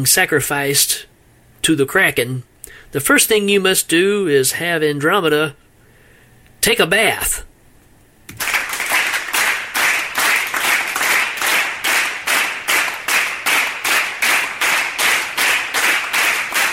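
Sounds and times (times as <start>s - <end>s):
speech: 0.0s - 5.6s, 6.6s - 7.5s
live audience cheering: 8.3s - 16.7s
live crowd clapping in steady unison: 8.3s - 16.7s.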